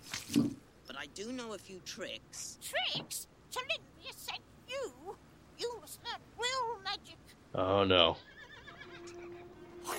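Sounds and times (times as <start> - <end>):
speech: 0.3 - 3.8, 6.9 - 8.3
horse whinnying: 8.2 - 9.5
steady tonal hum: 8.5 - 9.9.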